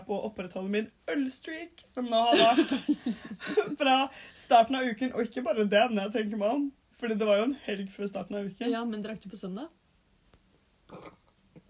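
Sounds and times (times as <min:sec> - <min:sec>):
speech: 0:00.1 - 0:09.8
laughter: 0:02.3 - 0:03.8
faint soft clicks: 0:10.2 - 0:10.6
burp muffled into a sleeve: 0:10.9 - 0:11.6.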